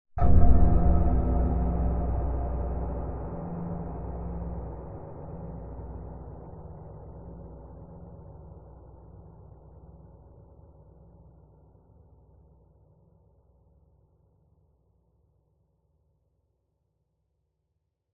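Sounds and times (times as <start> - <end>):
dark scary cinematic horror stab: 0.2 - 8.4.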